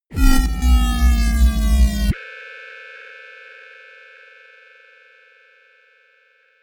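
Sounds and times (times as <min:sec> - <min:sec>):
synth drop: 0:00.1 - 0:02.2.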